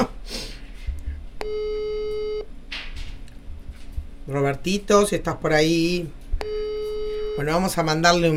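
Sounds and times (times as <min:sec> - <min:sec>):
single steady electronic telephone tone: 0:01.4 - 0:02.5, 0:06.4 - 0:07.8
speech: 0:04.3 - 0:06.6, 0:07.4 - 0:08.3.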